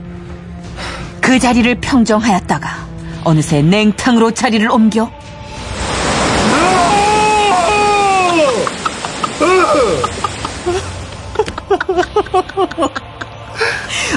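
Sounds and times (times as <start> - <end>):
speech: 1.3 - 5.2
powerful waterfall stream gushing loudly: 5.5 - 11.3
laughter: 8.3 - 14.1.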